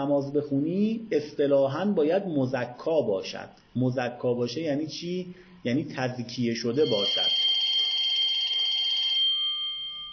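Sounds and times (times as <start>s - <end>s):
speech: 0.0s - 7.4s
telephone ringing with a warbling electronic tone: 6.7s - 10.1s.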